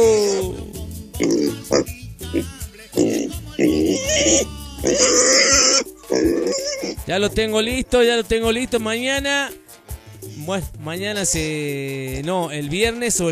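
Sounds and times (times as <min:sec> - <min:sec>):
pig being raffled grunting and squealing: 0:00.0 - 0:07.6
speech: 0:07.1 - 0:09.6, 0:10.4 - 0:13.3.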